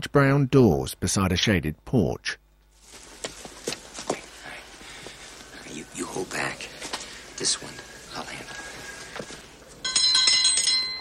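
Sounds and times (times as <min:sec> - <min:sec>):
speech: 0:00.0 - 0:02.4, 0:07.4 - 0:08.5
small hand bell rung at a door: 0:09.8 - 0:10.9.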